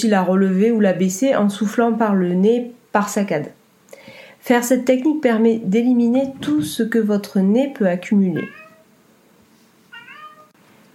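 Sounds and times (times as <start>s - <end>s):
speech: 0.0s - 3.6s, 4.4s - 8.6s
house cat meowing behind a closed door: 8.4s - 8.9s, 9.9s - 10.6s.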